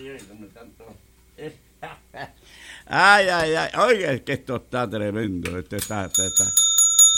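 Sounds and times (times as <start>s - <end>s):
speech: 0.0s - 6.6s
bell ringing after falling: 5.9s - 7.1s.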